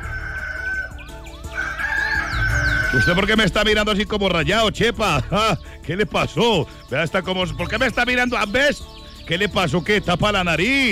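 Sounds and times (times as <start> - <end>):
rooster crowing: 0.0 - 3.2
busy musical backing: 0.0 - 10.8
speech: 2.9 - 10.8.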